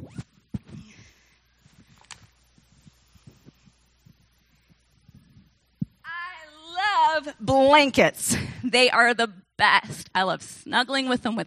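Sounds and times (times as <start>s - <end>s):
zipper being pulled closed: 0.0s - 0.8s
speech: 7.2s - 11.4s.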